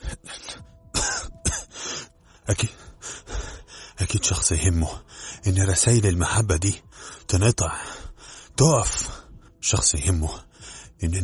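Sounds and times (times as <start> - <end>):
man coughing while getting up from the floor: 0.0 - 1.8, 4.0 - 4.7
speech: 2.5 - 2.9, 4.0 - 8.0, 8.6 - 11.2.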